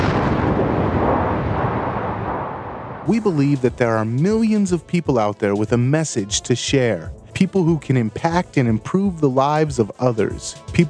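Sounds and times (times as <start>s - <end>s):
rocket launch blast-off roar: 0.0s - 3.6s
speech: 3.1s - 10.8s.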